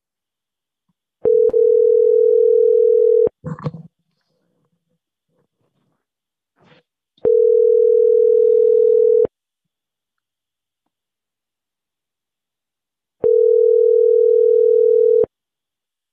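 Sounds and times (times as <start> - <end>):
telephone dial tone: 1.2 - 3.3, 7.2 - 9.3, 13.2 - 15.3.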